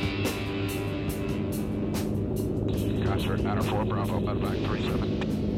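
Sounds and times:
military helicopter flying a combat mission in Vietnam: 0.2s - 5.5s
voices: 2.8s - 5.3s.

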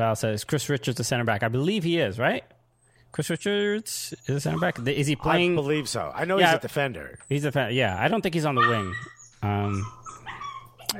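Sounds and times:
speech: 0.0s - 10.1s
dog whining and whimpering: 4.2s - 10.9s.

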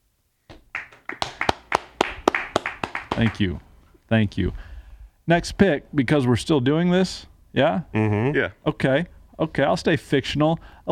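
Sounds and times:
hands clapping: 0.5s - 3.6s
speech: 3.2s - 4.7s, 5.3s - 10.9s.

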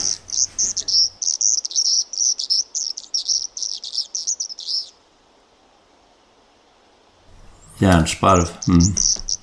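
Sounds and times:
river warbler reeling song: 0.0s - 5.0s, 8.3s - 9.4s
speech: 7.8s - 9.2s.

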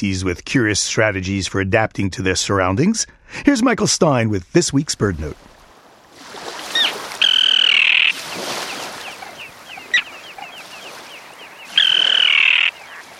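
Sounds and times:
speech: 0.0s - 5.5s
common tern calls: 6.6s - 13.1s.

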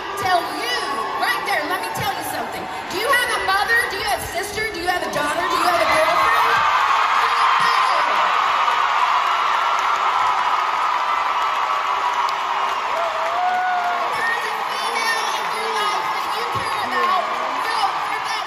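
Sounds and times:
large crowd at a campaign rally screaming and cheering: 0.0s - 18.4s.

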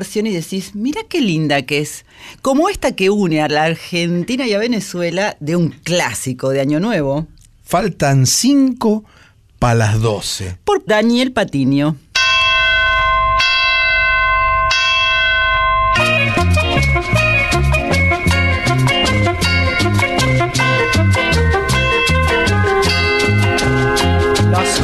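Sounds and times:
speech: 0.0s - 12.0s
church bells ringing: 12.2s - 23.7s
upbeat band with steady driving rhythm: 16.0s - 24.8s.

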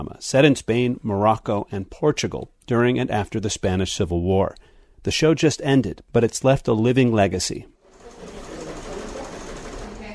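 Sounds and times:
speech: 0.0s - 7.8s
sewing machine whirring at a sewing workshop in a sewing supply store in Valencia: 7.8s - 10.1s.

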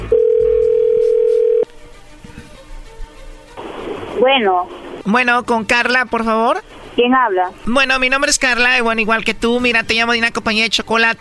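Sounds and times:
telephone dial tone while a call is being dialed: 0.1s - 1.7s
faint telephone line hiss: 1.7s - 7.0s
speech: 4.3s - 11.2s.

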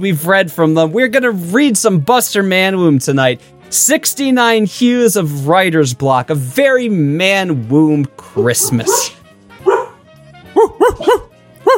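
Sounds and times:
speech: 0.0s - 9.2s
dog barking: 8.4s - 10.0s, 10.6s - 11.7s.

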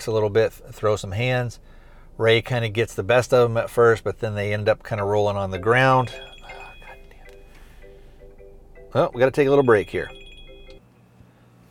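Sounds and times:
speech: 0.0s - 6.3s, 8.9s - 10.2s
low steady hum: 0.0s - 11.6s
electronic phone beep from an incoming call: 5.6s - 8.1s, 9.4s - 10.8s.

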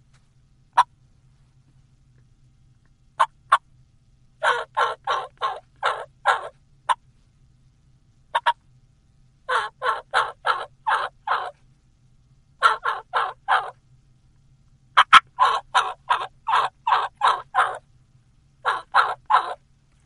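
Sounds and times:
gobbler turkey yelping: 4.4s - 7.0s, 8.4s - 8.6s, 9.5s - 11.6s, 12.6s - 13.8s, 15.0s - 17.8s, 18.6s - 19.6s.

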